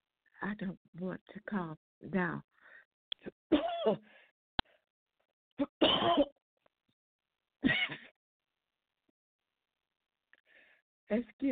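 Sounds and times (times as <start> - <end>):
speech: 0.4 - 2.6, 3.2 - 4.2, 5.6 - 6.3, 11.1 - 11.5
harsh hacking coughs in a coughing fit: 3.5 - 4.1, 5.6 - 6.4, 7.6 - 8.1.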